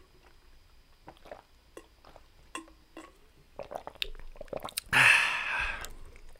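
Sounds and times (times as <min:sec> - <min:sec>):
drinking from a water bottle: 0:01.0 - 0:02.3, 0:03.0 - 0:06.3.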